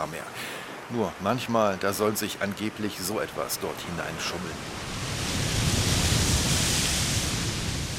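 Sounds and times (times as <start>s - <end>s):
speech: 0.0s - 4.9s
huge ocean wave roaring: 3.2s - 7.9s.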